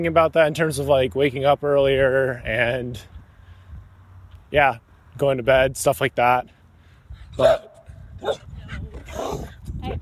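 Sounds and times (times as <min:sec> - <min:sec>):
speech: 0:00.0 - 0:03.2, 0:04.5 - 0:06.6, 0:07.4 - 0:09.9
dog barking during a walk: 0:07.4 - 0:08.5.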